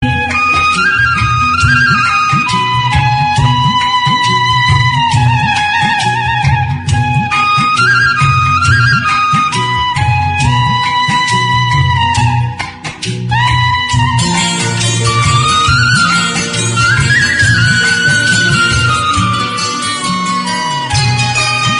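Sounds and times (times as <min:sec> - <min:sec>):
heart touching flute background music: 0:00.0 - 0:21.7.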